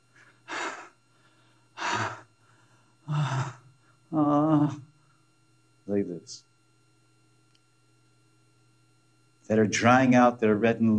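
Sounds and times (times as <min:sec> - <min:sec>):
voice imitating heavy sighing breaths: 0:00.2 - 0:04.9
speech: 0:04.6 - 0:04.9, 0:06.2 - 0:06.5, 0:09.5 - 0:10.9.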